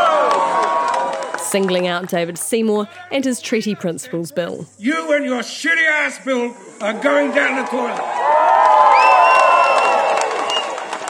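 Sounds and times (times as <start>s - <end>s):
scattered applause: 0.0s - 4.2s, 6.8s - 11.0s
large crowd cheering loudly with whoops and shouts: 0.0s - 4.7s, 6.1s - 11.0s
speech: 1.5s - 8.3s.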